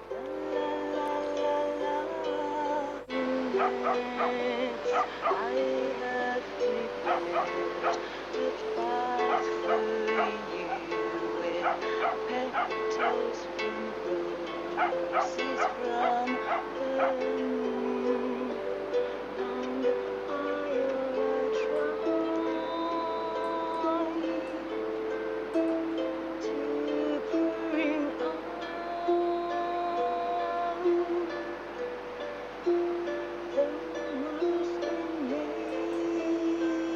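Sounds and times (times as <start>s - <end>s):
steady sustained tonal background: 0.0s - 36.9s
dogs barking on San Lorenzo beach: 7.1s - 8.0s, 14.8s - 15.7s.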